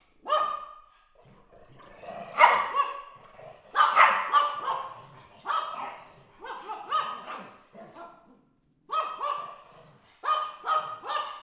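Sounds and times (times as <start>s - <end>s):
dogs growling: 0.9s - 8.5s, 9.2s - 10.3s.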